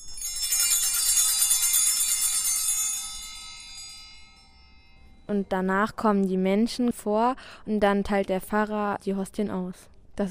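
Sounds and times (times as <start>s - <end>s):
cluster of altar bells shaken during communion: 0.0s - 6.0s
speech: 5.3s - 10.3s.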